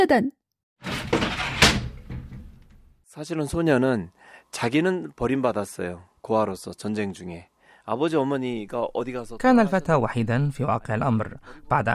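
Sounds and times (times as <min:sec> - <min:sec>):
speech: 0:00.0 - 0:00.9, 0:03.2 - 0:11.9
door swinging shut with a broadband rattle and sharp knock: 0:00.8 - 0:02.9.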